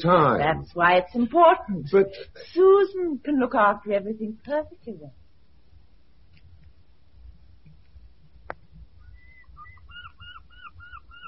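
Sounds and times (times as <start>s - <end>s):
speech: 0.0s - 5.2s
short repeated bird calls by the sea on the south coast: 9.0s - 11.2s.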